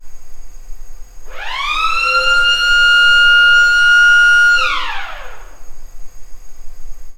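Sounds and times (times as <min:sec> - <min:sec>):
siren: 0:01.3 - 0:05.6.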